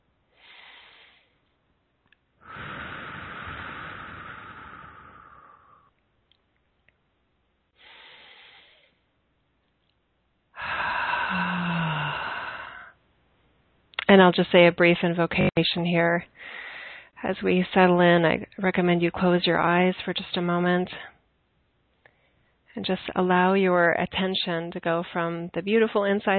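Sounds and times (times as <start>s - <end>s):
deep breathing in through the nose and out through the mouth: 0.3s - 1.5s, 2.4s - 5.9s, 7.8s - 9.0s, 10.6s - 13.0s, 16.3s - 17.2s
speech: 14.1s - 16.6s, 17.2s - 21.1s, 22.8s - 26.3s.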